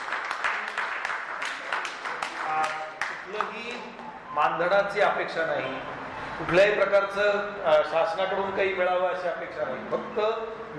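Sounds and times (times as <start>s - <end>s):
audience applauding at a ceremony: 0.0s - 4.0s
speech: 4.4s - 10.7s.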